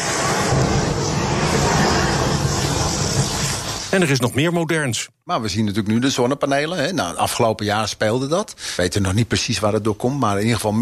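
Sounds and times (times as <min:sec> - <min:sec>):
phone battery burning with a half-metre jet of flame: 0:00.0 - 0:04.4
speech: 0:03.9 - 0:10.7.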